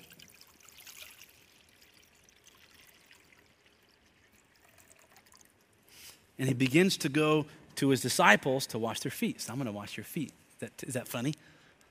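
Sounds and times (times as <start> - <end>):
water pouring into a bowl: 0.0 - 5.8
speech: 6.4 - 11.5.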